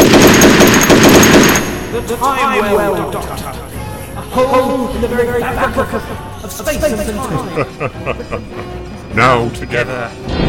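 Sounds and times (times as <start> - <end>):
Browning M2 .50 caliber machine gun firing: 0.0 - 2.0
speech: 2.1 - 3.8, 4.4 - 10.4
laughter: 2.3 - 8.9.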